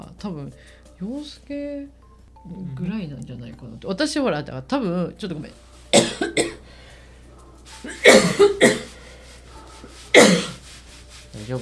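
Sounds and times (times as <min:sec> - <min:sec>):
speech: 0:00.2 - 0:06.6, 0:07.8 - 0:08.8
person coughing in short harsh bursts: 0:05.9 - 0:06.6, 0:07.8 - 0:09.0, 0:10.1 - 0:10.6.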